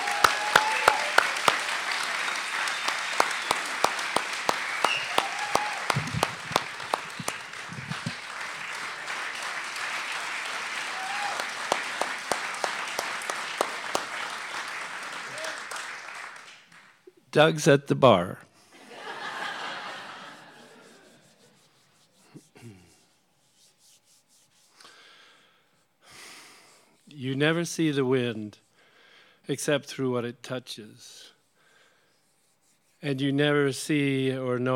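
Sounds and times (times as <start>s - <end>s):
crowd clapping: 0.0s - 17.0s
speech: 17.4s - 18.5s, 27.4s - 28.6s, 29.5s - 31.3s, 33.0s - 34.7s
laughter: 18.8s - 21.4s.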